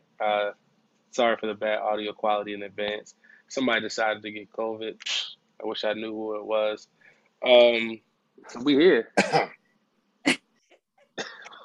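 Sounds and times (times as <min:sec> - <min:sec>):
speech: 0:00.2 - 0:09.6
faint breathy noises: 0:03.1 - 0:03.6
Zoom meeting participant coughing: 0:09.2 - 0:09.6, 0:11.2 - 0:11.6.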